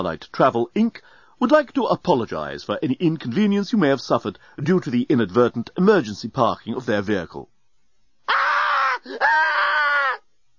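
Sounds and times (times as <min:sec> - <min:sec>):
speech: 0:00.0 - 0:07.5, 0:09.0 - 0:09.8
woman screaming uncontrollably: 0:08.3 - 0:10.2.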